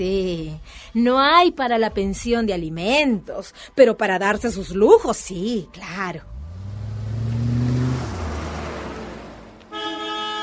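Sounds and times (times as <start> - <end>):
speech: 0.0 - 6.3
car engine revving as the car drives in: 6.2 - 9.7.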